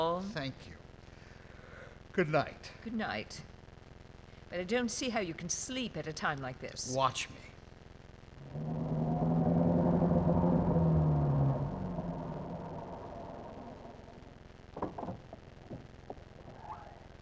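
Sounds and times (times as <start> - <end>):
speech: 0.0 - 0.9, 2.2 - 3.5, 4.5 - 7.5
low engine rumble of a car driving up: 8.4 - 15.7
sharp clicks and knocks: 14.8 - 16.3.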